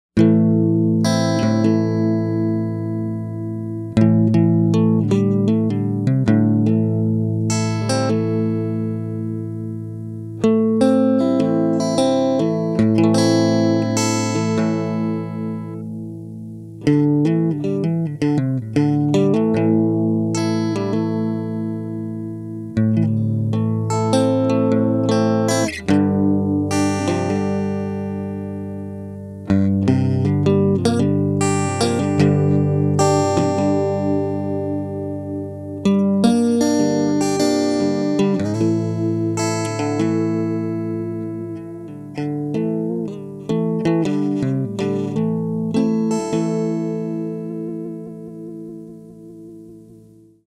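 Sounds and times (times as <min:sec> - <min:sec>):
dreamy improvisation through amp head: 0:00.2 - 0:50.4.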